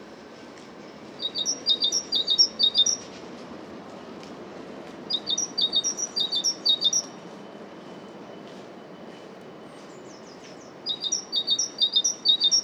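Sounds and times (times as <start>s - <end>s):
great tit Parus major singing: 1.2s - 3.0s, 5.1s - 7.1s, 9.8s - 12.6s.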